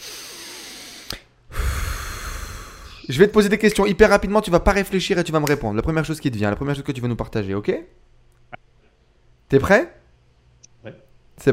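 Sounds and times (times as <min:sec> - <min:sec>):
person breathing in deeply: 0:00.0 - 0:03.1
speech: 0:03.1 - 0:08.1, 0:09.5 - 0:10.0, 0:10.8 - 0:11.5.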